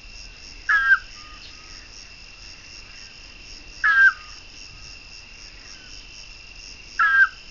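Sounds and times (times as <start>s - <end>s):
Otus scops calling: 0.7s - 1.8s, 3.8s - 4.4s, 7.0s - 7.4s.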